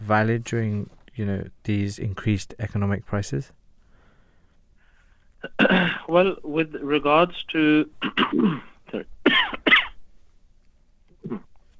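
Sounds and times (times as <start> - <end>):
speech: 0.1 - 3.6, 5.4 - 9.7, 11.2 - 11.5
speaker coughing and clearing throat during a discussion: 5.4 - 6.1, 8.0 - 10.0.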